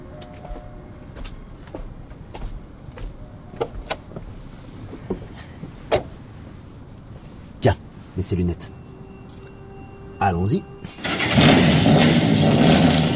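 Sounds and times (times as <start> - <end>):
low engine rumble inside a retro-bodied car with a very recent engine: 3.5 - 13.1
speech: 7.6 - 8.8, 10.2 - 11.0
whirring burst inside a car: 10.7 - 13.1.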